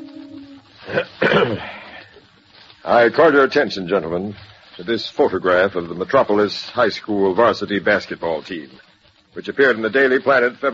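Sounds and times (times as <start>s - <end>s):
man clearing his throat: 0.9s - 1.8s
speech: 0.9s - 1.8s, 2.8s - 10.7s.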